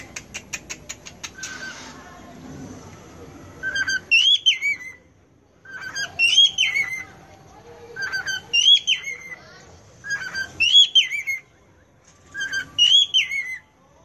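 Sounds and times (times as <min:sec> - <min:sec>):
Cockatiel opening clicks: 0:00.0 - 0:01.6
Cockatiel singing clear whistled phrases with rising then falling slurs: 0:03.6 - 0:07.1, 0:08.0 - 0:09.4, 0:10.0 - 0:13.7.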